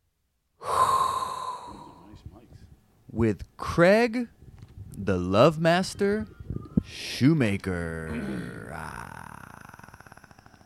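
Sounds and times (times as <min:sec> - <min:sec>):
deep inhaled breath taken on purpose: 0:00.6 - 0:02.1
speech: 0:03.2 - 0:04.4, 0:05.0 - 0:09.0.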